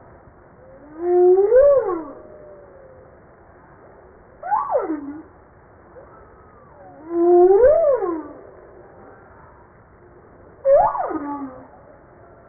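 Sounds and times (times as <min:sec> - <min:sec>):
humpback whale song of rising-then-falling moans and upswept cries: 0:00.6 - 0:03.4, 0:04.4 - 0:05.3, 0:06.0 - 0:09.7, 0:10.6 - 0:12.4.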